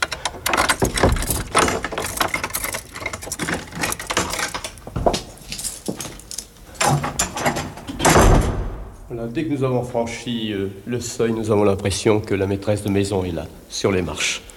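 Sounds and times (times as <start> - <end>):
keys jangling: 0.0 - 7.7
metal clicks of a lock being worked: 0.0 - 8.9
heavy house door creaking and knocking open: 0.0 - 9.2
speech: 9.2 - 14.4.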